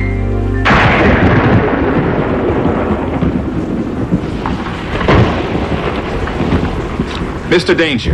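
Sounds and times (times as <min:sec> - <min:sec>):
deep rolling thunder in a night thunderstorm: 0:00.6 - 0:08.1
steady wash of rain-like noise: 0:00.7 - 0:08.1
speech: 0:07.5 - 0:08.1.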